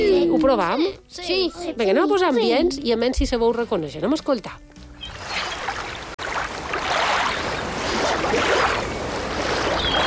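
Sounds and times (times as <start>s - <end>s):
speech: 0.0s - 4.8s
beach surf waves washing: 5.2s - 10.0s.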